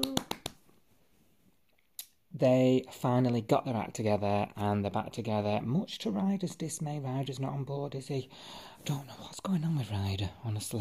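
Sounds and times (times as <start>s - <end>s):
sharp crisp hand claps: 0.0s - 0.8s
speech: 2.4s - 10.8s.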